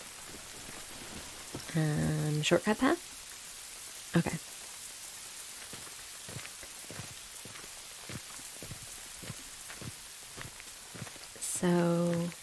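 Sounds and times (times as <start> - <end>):
heavier rain drips and splats: 0.0 - 12.4
rain pattering on hard surfaces: 0.0 - 12.4
speech: 1.8 - 3.1, 4.1 - 4.5.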